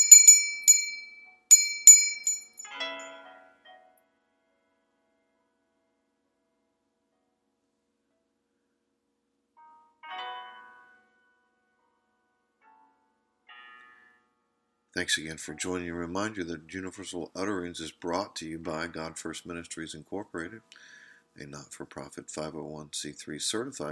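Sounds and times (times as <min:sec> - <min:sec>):
small bell ringing: 0:00.0 - 0:03.1
speech: 0:15.0 - 0:23.9.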